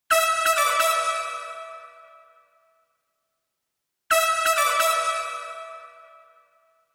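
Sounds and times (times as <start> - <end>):
brass through a Klark Teknik DN 780 plate reverb: 0.1 - 2.8, 4.1 - 6.8.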